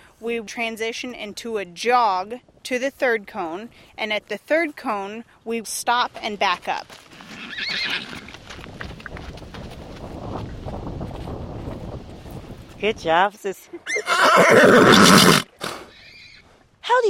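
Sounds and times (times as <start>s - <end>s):
speech: 0.2s - 8.4s, 12.8s - 15.4s, 16.9s - 17.0s
horse hooves clip-clopping outdoors: 4.2s - 13.4s
mare whinnying: 7.2s - 8.3s, 13.8s - 16.5s.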